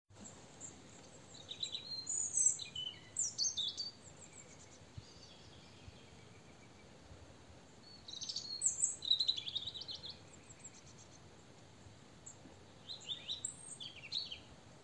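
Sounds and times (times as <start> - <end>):
steady hiss: 0.1 - 14.8
European robin Erithacus rubecula singing high thin warbling phrases: 0.2 - 7.0, 7.7 - 11.5, 12.2 - 14.5.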